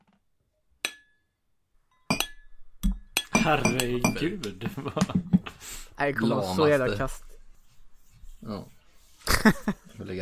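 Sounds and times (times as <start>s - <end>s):
glasses clinking in a toast: 1.9s - 4.4s
laughter: 3.4s - 5.9s, 9.2s - 10.2s
speech: 3.4s - 7.3s, 8.4s - 8.8s, 9.4s - 10.2s.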